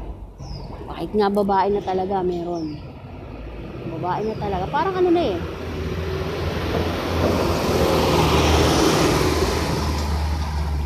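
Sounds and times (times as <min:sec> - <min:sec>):
broad road noise: 0:00.0 - 0:10.8
speech: 0:01.0 - 0:02.9, 0:04.0 - 0:05.6
heavy truck engine drone: 0:02.6 - 0:10.8.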